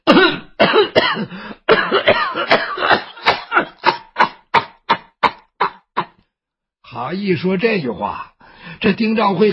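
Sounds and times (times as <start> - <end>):
performer imitating an old woman's coughing: 0.0 - 6.2
speech: 7.0 - 9.5.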